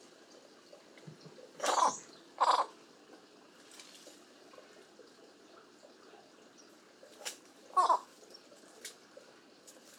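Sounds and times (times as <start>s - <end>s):
Ardeola bacchus Chinese pond heron: 1.6s - 2.8s, 7.7s - 8.1s.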